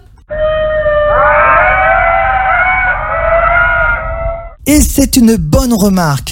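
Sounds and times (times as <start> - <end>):
ring-tailed lemurs wailing in a chorus: 0.2 - 4.6
speech: 4.7 - 6.2.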